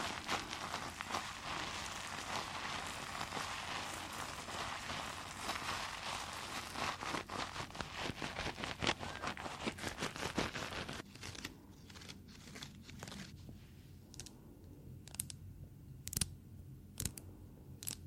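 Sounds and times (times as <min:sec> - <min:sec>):
crinkling and scratching: 0:00.0 - 0:13.4
low steady hum: 0:00.0 - 0:18.0.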